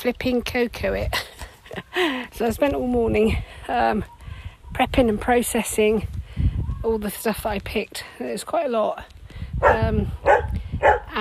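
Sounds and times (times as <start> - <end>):
speech: 0.0 - 6.2, 6.8 - 10.4
dog barking: 9.6 - 11.2.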